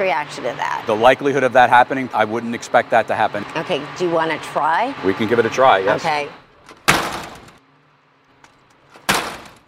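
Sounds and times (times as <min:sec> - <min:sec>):
speech: 0:00.0 - 0:06.4
door slammed hard with rattling decay: 0:06.7 - 0:07.6, 0:08.9 - 0:09.6.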